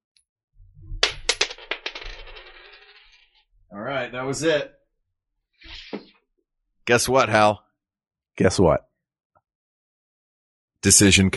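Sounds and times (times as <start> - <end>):
flipped coin bouncing on the ground: 1.0 - 3.3
speech: 3.8 - 4.8, 6.9 - 7.6, 8.4 - 8.9, 10.8 - 11.3.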